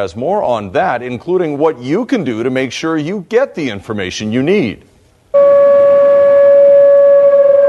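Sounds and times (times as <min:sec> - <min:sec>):
speech: 0:00.0 - 0:05.6
tsunami warning siren blaring a steady tone: 0:05.3 - 0:07.6.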